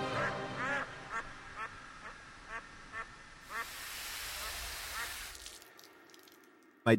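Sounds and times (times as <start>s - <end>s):
duck quacking: 0.0s - 3.7s
broad hissing rush: 3.4s - 5.6s.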